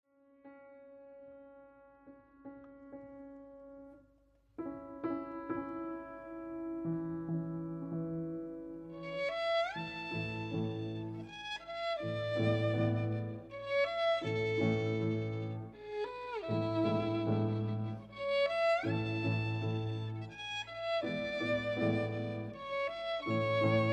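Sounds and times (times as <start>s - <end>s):
piano: 0.0s - 23.9s
violin: 8.9s - 23.9s.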